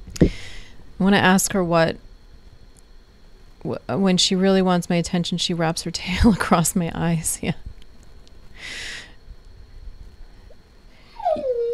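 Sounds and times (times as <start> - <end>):
speech: 1.0 - 2.1, 3.6 - 7.7
German Shepherd dog whimpering: 11.1 - 11.7.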